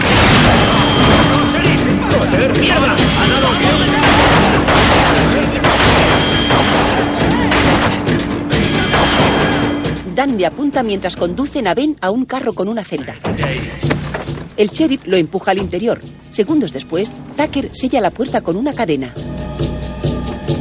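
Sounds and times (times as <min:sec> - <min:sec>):
gunshot fired at a sheriff's deputy in a western action film: 0:00.0 - 0:01.5, 0:04.0 - 0:08.2, 0:08.8 - 0:09.8
loud dense mix of bursts and crashes: 0:00.0 - 0:10.0
speech: 0:10.2 - 0:13.9, 0:14.6 - 0:19.7.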